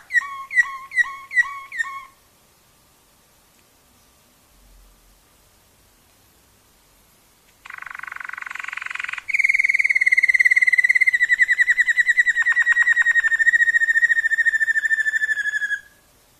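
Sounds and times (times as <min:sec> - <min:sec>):
Waterslager canary singing rolling trill: 0:00.0 - 0:02.2, 0:07.6 - 0:16.0.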